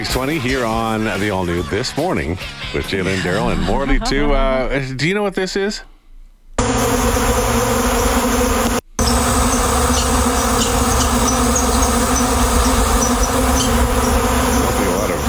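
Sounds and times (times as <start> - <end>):
speech: 0.1 - 5.9
big bee swarm buzzing loudly: 6.6 - 15.2.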